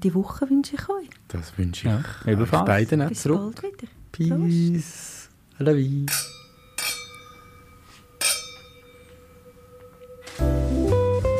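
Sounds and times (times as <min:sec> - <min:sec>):
speech: 0:00.0 - 0:06.4
wine glasses clinking in a toast: 0:06.0 - 0:09.6
music: 0:07.9 - 0:11.3.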